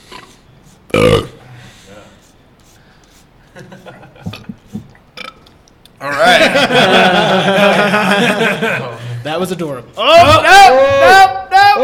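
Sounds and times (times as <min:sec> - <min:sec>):
loud throaty burp: 0:00.9 - 0:01.4, 0:05.2 - 0:05.5
laughter: 0:03.5 - 0:04.6, 0:06.0 - 0:09.2
speech: 0:06.0 - 0:11.8.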